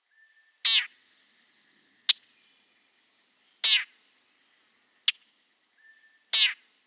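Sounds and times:
icterid bird calls: 0:00.7 - 0:00.9, 0:03.6 - 0:03.9, 0:06.3 - 0:06.6.

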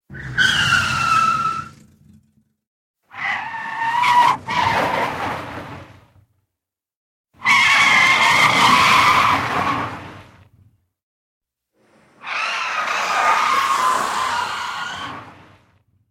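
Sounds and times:
car tires drifting: 0:00.1 - 0:02.0, 0:03.1 - 0:06.0, 0:07.4 - 0:10.2, 0:12.3 - 0:15.4.

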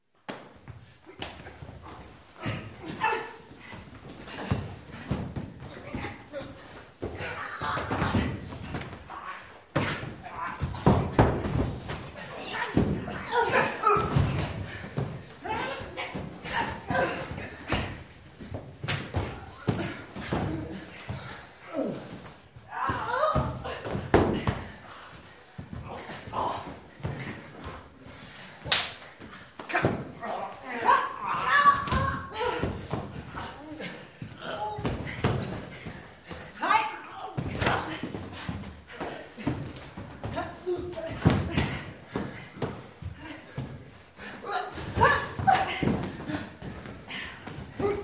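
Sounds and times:
people fighting: 0:00.3 - 0:48.0.

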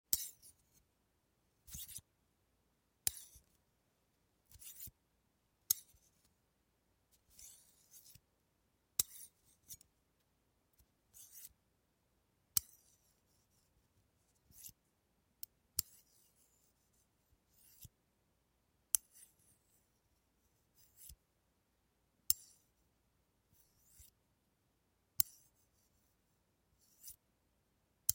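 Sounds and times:
knitting: 0:00.1 - 0:00.9, 0:01.6 - 0:02.1, 0:03.0 - 0:03.6, 0:04.4 - 0:05.0, 0:05.6 - 0:06.4, 0:07.1 - 0:08.3, 0:08.9 - 0:11.6, 0:12.5 - 0:18.0, 0:18.9 - 0:21.3, 0:22.2 - 0:22.8, 0:23.5 - 0:24.2, 0:25.2 - 0:27.3.

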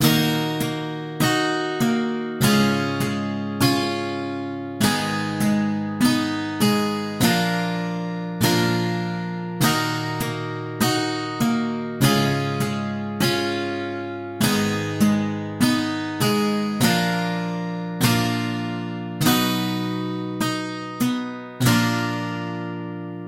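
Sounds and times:
looped guitar melody: 0:00.0 - 0:23.2.

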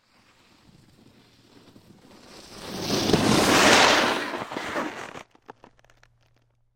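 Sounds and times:
snowboard on snow: 0:00.0 - 0:06.0.

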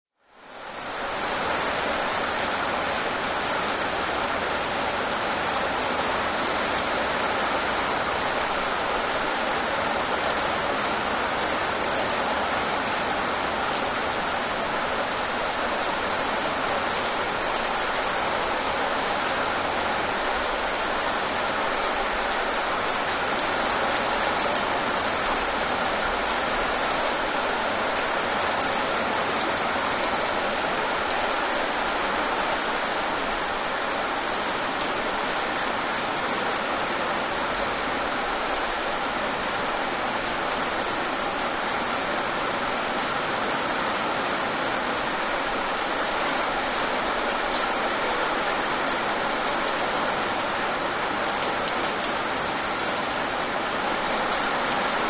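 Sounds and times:
pleasant rain: 0:00.1 - 0:55.0.

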